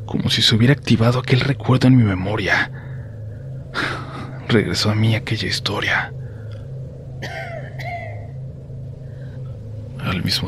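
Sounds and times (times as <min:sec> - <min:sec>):
steady low hum: 0:00.0 - 0:10.4
speech: 0:00.1 - 0:02.8, 0:03.8 - 0:06.2, 0:10.1 - 0:10.4
raspy woman coughing on the back patio: 0:07.2 - 0:08.3.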